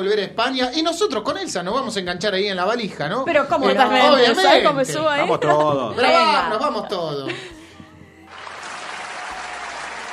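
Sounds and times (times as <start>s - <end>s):
speech: 0.0s - 7.6s
crowd applauding: 8.3s - 10.1s.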